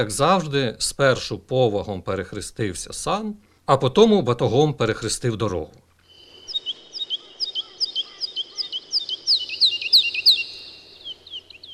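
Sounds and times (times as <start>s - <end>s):
speech: 0.0s - 5.8s
skylark singing: 6.1s - 11.7s.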